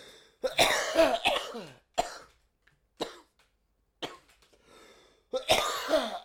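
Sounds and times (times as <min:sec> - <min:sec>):
harsh raspy coughing fit: 0:00.4 - 0:02.3, 0:03.0 - 0:03.3, 0:04.0 - 0:04.3, 0:05.3 - 0:06.2.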